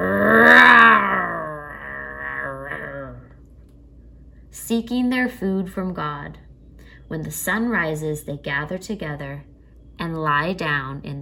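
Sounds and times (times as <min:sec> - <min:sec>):
young lions roaring: 0:00.0 - 0:03.4
speech: 0:04.7 - 0:06.5, 0:07.1 - 0:11.2.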